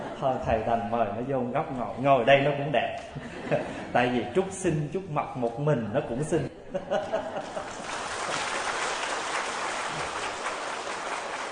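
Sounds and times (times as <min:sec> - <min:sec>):
laughter: 0:00.0 - 0:00.8, 0:03.1 - 0:04.4, 0:06.4 - 0:08.4
speech: 0:00.2 - 0:08.0
audience applause: 0:07.4 - 0:11.5.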